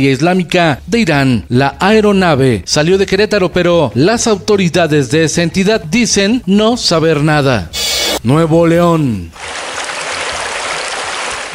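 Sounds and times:
speech: 0:00.0 - 0:09.6
water gushing from a burst aqueduct: 0:09.4 - 0:11.5.

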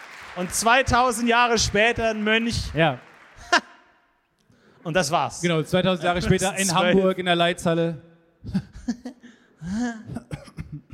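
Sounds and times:
speech: 0:00.4 - 0:03.1, 0:04.8 - 0:08.7, 0:09.7 - 0:10.2
longer rasping voiced hack: 0:06.0 - 0:07.0
short dry coughs: 0:10.0 - 0:10.9.

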